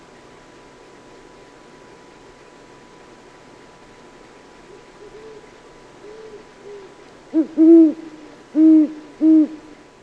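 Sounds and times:
great horned owl hooting: 4.7 - 9.8.

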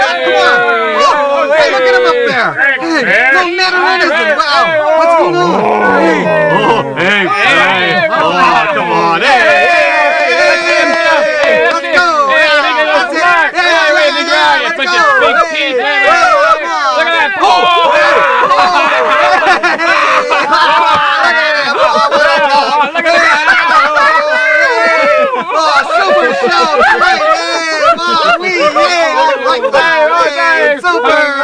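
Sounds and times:
laughter: 0.1 - 31.4
crowd oohing: 4.1 - 12.3, 14.2 - 30.7.

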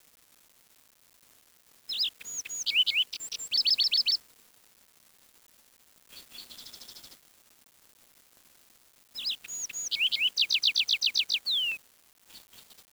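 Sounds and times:
bird calls with rapid looping chirps: 1.9 - 4.2, 9.2 - 11.8.

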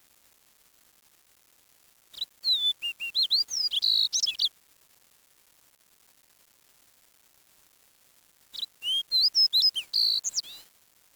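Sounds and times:
high whistled bird chirps: 2.2 - 4.5, 8.6 - 10.6.

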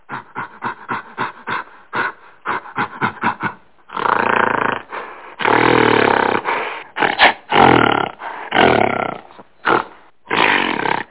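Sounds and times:
gorilla grunting: 0.0 - 11.0.

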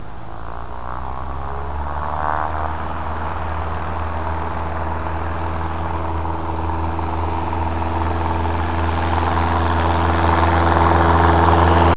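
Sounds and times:
takeoff: 0.0 - 11.9.

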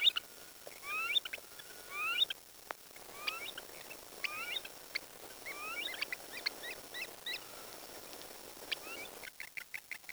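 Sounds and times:
birds giving short slurred whistled chirps: 0.0 - 9.2.

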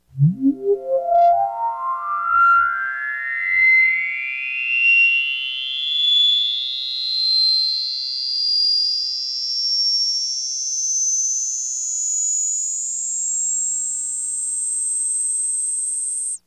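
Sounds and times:
synth sweep: 0.0 - 7.0.

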